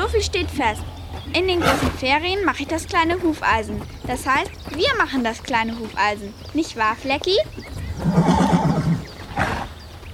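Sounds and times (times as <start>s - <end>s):
speech: 0.2s - 8.3s
horse neighing: 7.9s - 9.8s.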